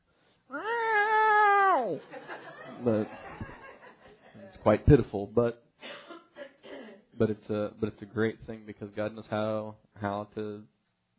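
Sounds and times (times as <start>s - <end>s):
person imitating a cat meowing: 0.5s - 2.0s
laughter: 2.0s - 4.4s
speech: 2.8s - 3.2s, 4.6s - 5.7s, 7.2s - 10.8s.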